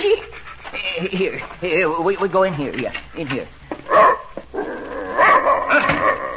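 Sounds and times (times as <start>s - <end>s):
speech: 1.0s - 4.1s
large German shepherd barking: 3.9s - 4.3s, 5.2s - 6.2s
German shepherd whiny vocalizations: 3.9s - 6.3s.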